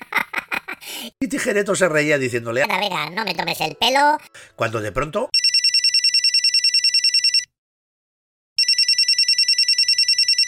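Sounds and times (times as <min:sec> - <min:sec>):
laughter: 0:00.0 - 0:00.9
speech: 0:01.1 - 0:05.4
telephone ringing with rapid electronic trilling: 0:05.4 - 0:07.5, 0:08.6 - 0:10.4.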